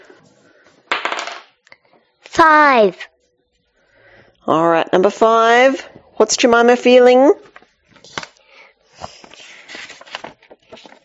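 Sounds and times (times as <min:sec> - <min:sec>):
small hard dice tumbling onto a hard table surface: 0:00.9 - 0:01.6
speech: 0:02.4 - 0:03.1, 0:04.5 - 0:07.5.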